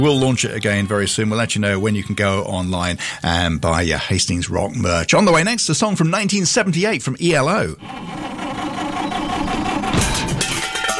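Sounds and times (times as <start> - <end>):
speech: 0.0 - 8.4
car engine struggling and rattling unevenly: 7.7 - 10.9.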